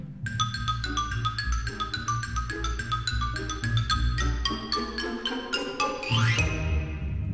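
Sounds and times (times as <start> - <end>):
Chinese block tapping: 0.3 - 4.5
xylophone playing quick bright runs with rising glissando: 0.3 - 7.1.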